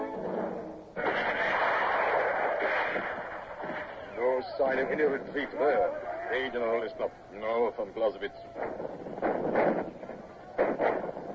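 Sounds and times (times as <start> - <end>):
low noise: 0.0 - 11.3
cannon fire: 1.0 - 11.3
speech: 4.6 - 8.8.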